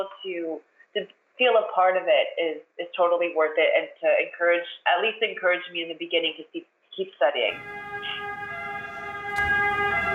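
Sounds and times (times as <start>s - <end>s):
speech: 0.0s - 8.2s
ambulance siren passing by: 7.5s - 10.1s.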